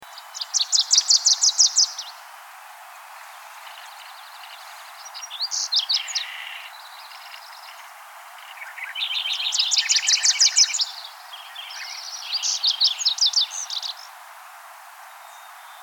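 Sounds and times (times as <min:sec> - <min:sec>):
Wilson's Warbler calling: 0:00.1 - 0:02.2, 0:03.5 - 0:14.1.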